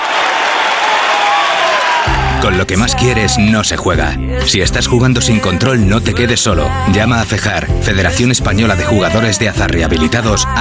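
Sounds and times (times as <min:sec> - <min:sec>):
large crowd applauding at a graduation ceremony: 0:00.0 - 0:02.8
speech: 0:02.4 - 0:10.5.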